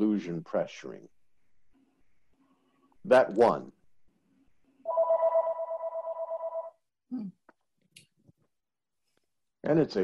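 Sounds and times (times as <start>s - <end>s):
speech: 0.0s - 1.2s, 3.0s - 3.8s, 7.1s - 7.4s, 9.6s - 10.0s
telephone ringing with a warbling electronic trill: 4.9s - 6.8s.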